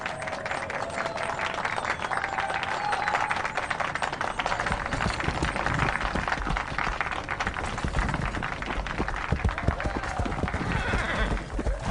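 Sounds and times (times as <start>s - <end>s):
people clapping: 0.0s - 11.8s
clatter of hooves: 2.2s - 11.8s
horses whinnying at an outdoor ceremony: 9.5s - 11.8s.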